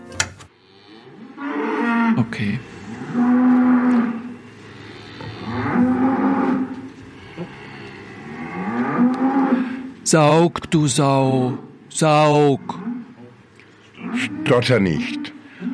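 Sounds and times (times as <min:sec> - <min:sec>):
cow mooing: 0:00.5 - 0:09.9, 0:14.0 - 0:15.7
speech: 0:02.2 - 0:03.4, 0:10.1 - 0:12.8, 0:14.5 - 0:15.2.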